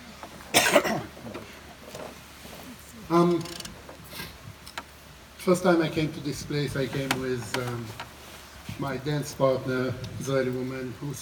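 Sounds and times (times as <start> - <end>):
person coughing from food stuck in throat: 0.5 - 1.1
speech: 3.1 - 3.6, 5.5 - 8.1, 8.8 - 11.1.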